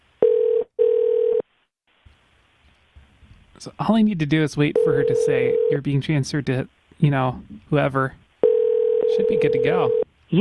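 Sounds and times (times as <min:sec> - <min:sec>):
telephone ringing tone on a call to an emergency number: 0:00.2 - 0:01.4, 0:04.8 - 0:05.8, 0:08.4 - 0:10.0
speech: 0:03.6 - 0:08.2, 0:09.1 - 0:10.4.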